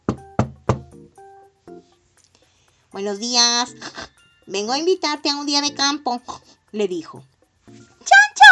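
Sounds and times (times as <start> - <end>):
loud knocking on a door: 0.0 - 1.0
speech: 3.0 - 7.3.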